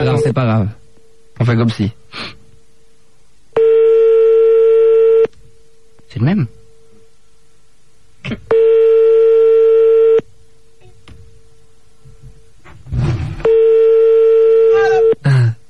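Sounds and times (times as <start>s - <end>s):
speech: 0.0s - 0.8s, 1.4s - 2.4s, 6.1s - 6.6s, 8.2s - 8.7s
French telephone ringing tone on a callback: 3.6s - 5.3s, 8.5s - 10.2s, 13.4s - 15.2s.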